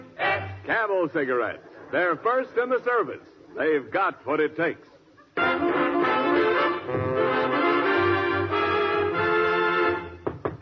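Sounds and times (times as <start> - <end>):
speech: 0.7 - 5.8
brassy band music: 5.4 - 10.2
sharp knocks on a door: 10.2 - 10.6.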